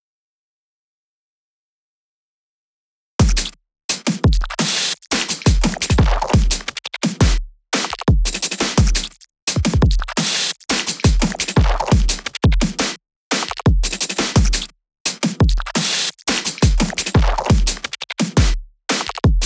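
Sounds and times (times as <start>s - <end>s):
drums: 3.2s - 19.4s
percussion: 3.2s - 19.4s.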